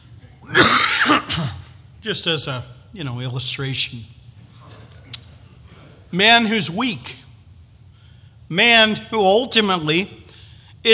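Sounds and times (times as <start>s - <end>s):
person coughing harshly: 0.4s - 1.8s
speech: 2.0s - 4.2s, 6.1s - 7.2s, 8.5s - 10.2s.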